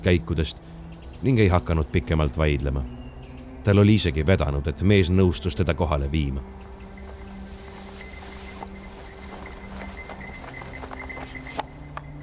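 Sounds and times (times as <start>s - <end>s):
speech: 0.0s - 3.0s, 3.6s - 6.7s
horse plodding through deep snow: 6.7s - 12.2s.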